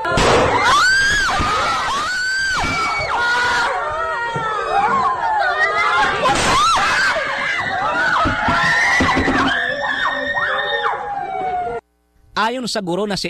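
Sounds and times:
panicked shouting: 0.0 - 11.8
students screaming and crying in classroom: 0.0 - 11.8
gunshots: 0.1 - 0.7
speech: 12.5 - 13.2.

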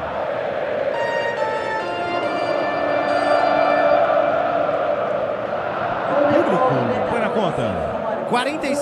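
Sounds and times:
large crowd of football fans singing and chanting in a stadium: 0.0 - 8.8
sustained sung tones: 0.8 - 6.0
speech: 8.3 - 8.8.

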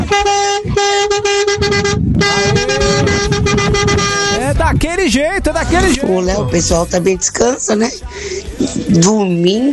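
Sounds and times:
loud vehicle horn blaring: 0.0 - 4.6
rumbling engine and road noise: 0.0 - 9.7
speech: 4.6 - 9.7.

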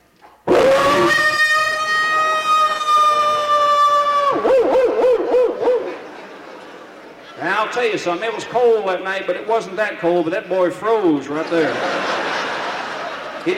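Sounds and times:
person imitating a big Alaskan wolf's baying howl into a microphone: 0.5 - 6.0
laughter: 2.6 - 8.5, 11.3 - 13.5
speech: 7.8 - 12.2.

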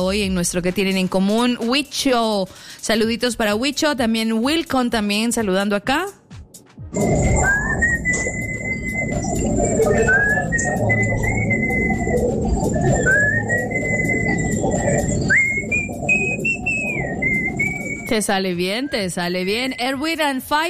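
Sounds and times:
speech: 0.0 - 6.2, 6.9 - 8.4, 9.2 - 11.3, 18.1 - 20.6
steady dense noise: 7.0 - 19.8
person whistling a short tune: 7.0 - 20.1.

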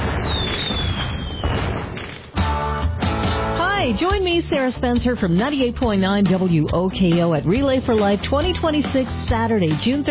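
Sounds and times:
firework whistling as it rises: 0.0 - 2.3
loud firework crackling: 0.0 - 2.6
speech: 3.9 - 10.0.

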